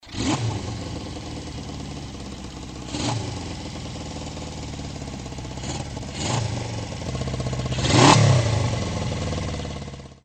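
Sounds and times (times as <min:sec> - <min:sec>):
350 four motorcycle engine: 0:00.0 - 0:10.2.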